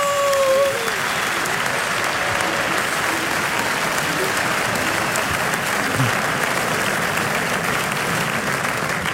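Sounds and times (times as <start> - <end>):
faint scattered cheers: 0.0 - 6.9
large audience applause: 0.0 - 9.1.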